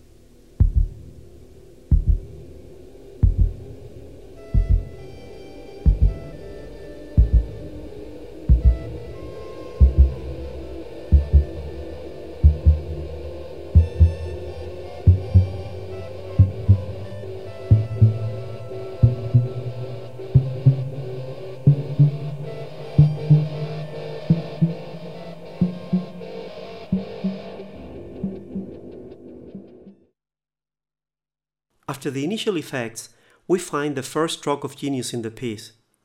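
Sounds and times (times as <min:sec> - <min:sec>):
low humming drone: 0:00.0 - 0:29.7
slow steady heartbeat thumping: 0:00.6 - 0:02.6, 0:03.2 - 0:05.2, 0:05.9 - 0:06.5, 0:07.1 - 0:09.2, 0:09.8 - 0:11.8, 0:12.4 - 0:23.6
speech: 0:32.0 - 0:35.8.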